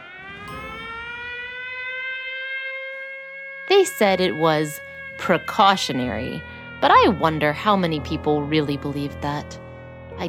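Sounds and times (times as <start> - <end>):
loud warning siren wailing: 0.0 - 10.2
speech: 3.8 - 9.6.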